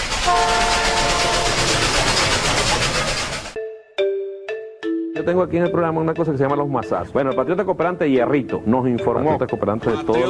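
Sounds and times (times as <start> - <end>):
train rumbling and clattering along the rails: 0.0 - 3.6
tonal train horn blasts: 0.2 - 2.2
speech: 5.2 - 10.2.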